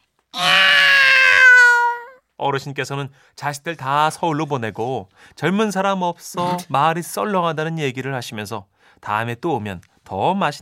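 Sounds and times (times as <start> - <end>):
very large cat meowing at a rural home: 0.4 - 2.2
speech: 2.4 - 10.6.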